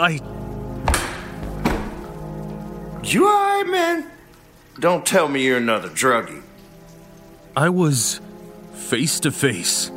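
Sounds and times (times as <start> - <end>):
speech: 0.0 - 0.4, 3.0 - 4.1, 4.8 - 6.4, 7.6 - 8.2, 8.8 - 9.9
heavy booming thuds of a door being wrenched off its hinges: 0.8 - 2.2.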